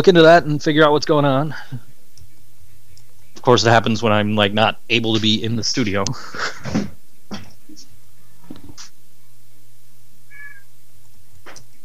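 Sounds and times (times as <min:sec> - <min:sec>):
speech: 0:00.0 - 0:01.9, 0:03.4 - 0:06.9
steady low hum: 0:00.0 - 0:11.8
cat meowing: 0:10.3 - 0:10.7.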